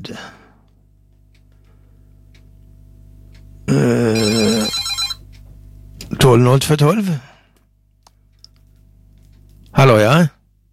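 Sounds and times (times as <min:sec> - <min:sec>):
speech: 0:00.0 - 0:00.4, 0:03.7 - 0:04.4, 0:06.2 - 0:07.3, 0:09.8 - 0:10.4
telephone ringing with a buzzy electronic tone: 0:04.1 - 0:05.2.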